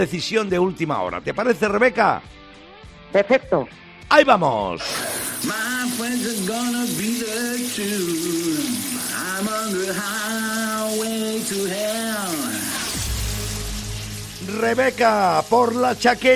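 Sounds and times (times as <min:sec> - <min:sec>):
speech: 0:00.0 - 0:02.5, 0:03.1 - 0:12.6, 0:14.4 - 0:16.3
person singing: 0:04.8 - 0:12.8
shower water running: 0:04.8 - 0:16.3.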